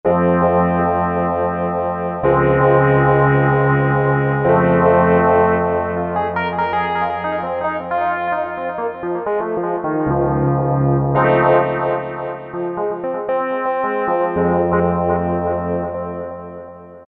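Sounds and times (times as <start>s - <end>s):
vintage electric piano on Korg MS2000 synthesizer: 0.0s - 17.0s.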